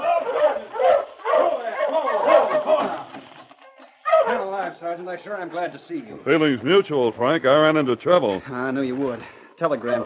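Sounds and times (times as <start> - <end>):
sled dogs whimpering: 0.0 - 2.7
sled dog team barking and yipping: 0.0 - 4.7, 9.8 - 10.0
speech: 4.8 - 10.0.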